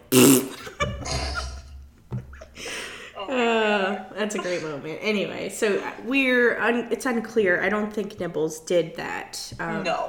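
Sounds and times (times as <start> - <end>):
voice blowing a wet raspberry imitating a fart: 0.0 - 0.6
laughter: 0.5 - 4.9
speech: 4.2 - 10.0.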